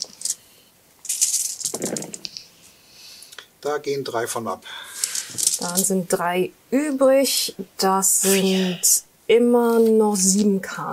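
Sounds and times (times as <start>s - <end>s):
handful of many dice rattling in a person's hands: 0.0s - 0.4s, 1.0s - 2.3s, 5.0s - 5.9s
speech: 3.6s - 4.8s, 5.4s - 10.9s.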